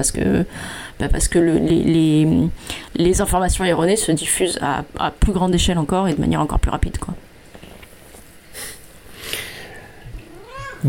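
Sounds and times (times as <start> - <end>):
speech: 0.0 - 7.3
soft breathy sniffs: 8.5 - 10.0
cat meowing: 10.3 - 10.8.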